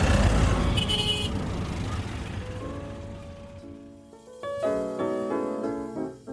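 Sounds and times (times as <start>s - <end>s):
busy street traffic rumbling: 0.0s - 5.4s
car horns honking in sustained blasts: 0.5s - 2.1s.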